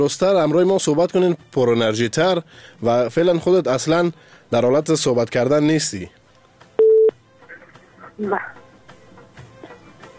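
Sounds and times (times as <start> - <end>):
speech: 0.0 - 6.2, 8.2 - 8.6
phone line noise: 6.8 - 7.1
phone line tone after call disconnects: 6.8 - 7.2.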